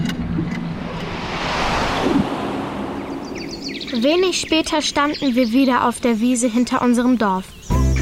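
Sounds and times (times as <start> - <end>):
air current rushing through a hole in an earth cave: 0.2 - 5.2
speech: 3.9 - 7.6.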